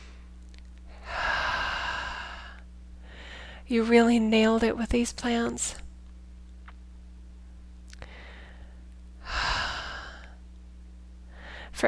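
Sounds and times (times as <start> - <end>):
deep breath: 0.9 - 3.6, 8.0 - 10.4, 11.3 - 11.8
speech: 3.7 - 5.8.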